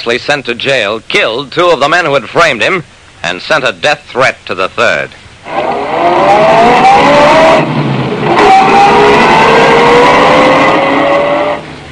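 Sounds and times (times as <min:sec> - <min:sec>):
speech: 0:00.0 - 0:07.9
car engine revving hard and accelerating: 0:05.4 - 0:11.8.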